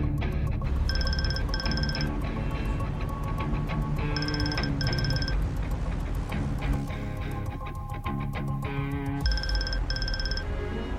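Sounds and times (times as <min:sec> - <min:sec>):
dense rumbling background: 0:00.0 - 0:10.9
mobile phone ringing in bright electronic bursts: 0:00.9 - 0:02.2, 0:04.1 - 0:05.4, 0:09.2 - 0:10.6.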